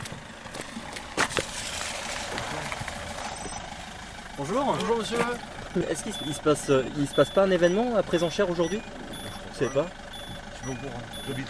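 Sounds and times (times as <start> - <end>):
approaching car road noise: 0.0 - 11.4
steady outdoor noise: 0.0 - 11.4
speech: 4.4 - 9.0, 9.6 - 10.0, 10.6 - 11.4.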